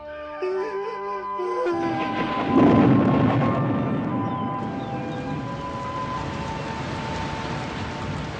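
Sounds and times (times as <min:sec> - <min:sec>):
deep roll of thunder: 0:01.7 - 0:08.3
heavy rain pouring: 0:01.7 - 0:08.3.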